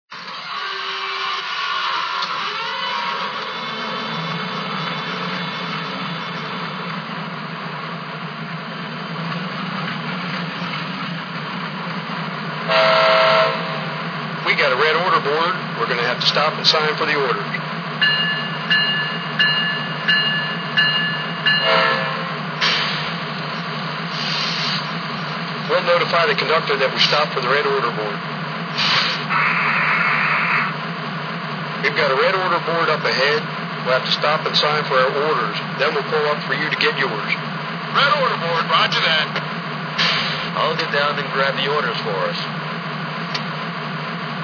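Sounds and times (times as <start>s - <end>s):
U25B locomotive train: 0.0s - 44.4s.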